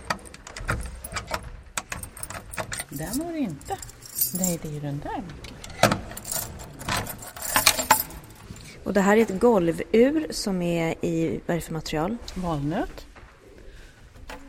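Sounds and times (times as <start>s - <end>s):
metallic keys jangling on a keyring: 0.0s - 4.8s, 6.2s - 8.6s
speech: 2.9s - 5.5s, 8.9s - 13.0s.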